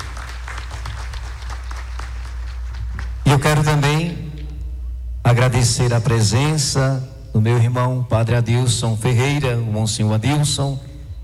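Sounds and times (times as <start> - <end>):
festival crowd applauding: 0.0 - 3.4
speech: 3.4 - 4.2, 5.3 - 10.9.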